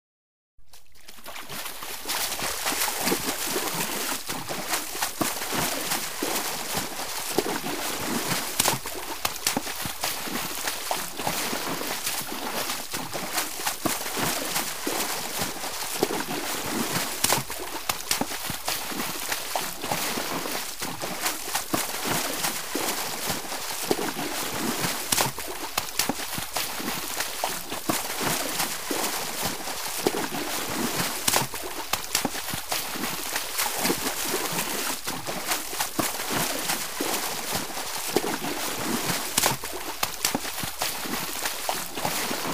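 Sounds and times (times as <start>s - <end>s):
splashing in the water: 0.6s - 42.5s.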